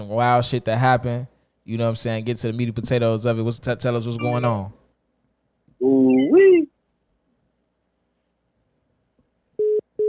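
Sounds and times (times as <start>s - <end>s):
speech: 0.0s - 4.8s, 5.8s - 6.7s
glitching phone line tones beeping: 4.2s - 4.6s.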